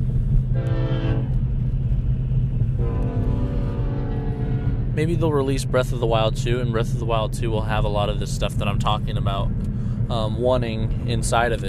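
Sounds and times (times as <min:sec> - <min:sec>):
train rumbling past: 0:00.0 - 0:11.6
train horn blasts: 0:00.5 - 0:01.5, 0:02.8 - 0:05.0
speech: 0:05.0 - 0:11.6.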